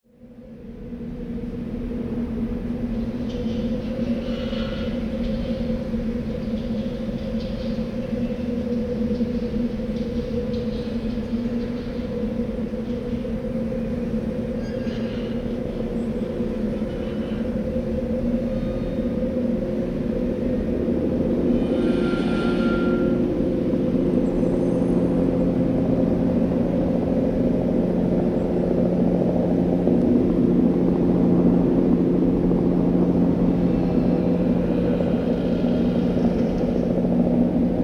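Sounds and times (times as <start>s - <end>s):
city ambience: 0.3s - 37.8s.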